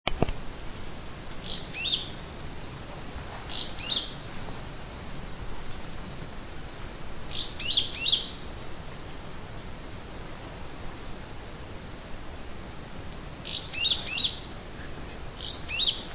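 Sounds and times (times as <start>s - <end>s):
steady background hiss: 0.1s - 16.1s
Caryothraustes canadensis yellow-green grosbeak singing: 0.4s - 5.2s, 6.3s - 16.1s.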